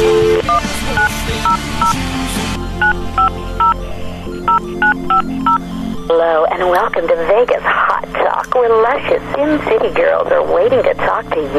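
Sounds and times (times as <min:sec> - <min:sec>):
touch-tone phone dialing beeps: 0:00.0 - 0:02.0, 0:02.8 - 0:03.8, 0:04.5 - 0:05.6
low hum: 0:02.8 - 0:11.5
speech: 0:06.6 - 0:11.5.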